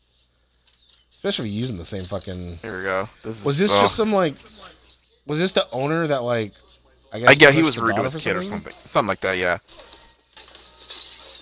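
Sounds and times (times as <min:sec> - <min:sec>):
speech: 0:01.2 - 0:10.0
glass door smashing and shattering: 0:10.4 - 0:11.3
scattered tinkling glass debris: 0:10.4 - 0:11.3.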